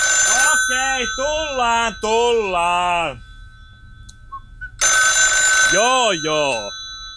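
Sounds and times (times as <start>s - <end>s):
telephone bell ringing: 0.0s - 4.1s, 4.8s - 7.1s
low rumble: 0.0s - 7.1s
speech: 0.7s - 3.3s, 5.7s - 6.8s.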